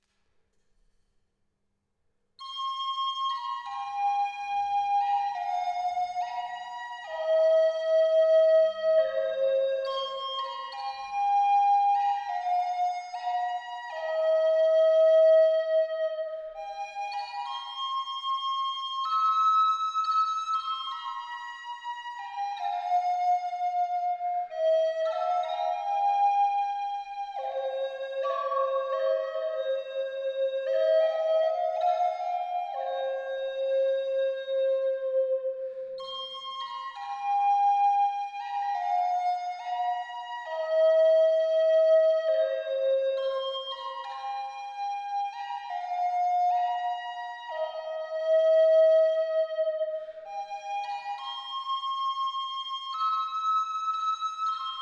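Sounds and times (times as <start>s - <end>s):
hazel tree tone C sharp at 432 Hz: 2.4s - 54.8s.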